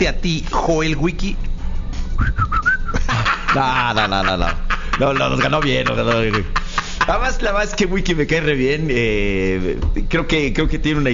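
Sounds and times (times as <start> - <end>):
speech: 0.1 - 1.5, 2.2 - 11.1
person whistling: 2.2 - 3.0
laughter: 2.9 - 8.0.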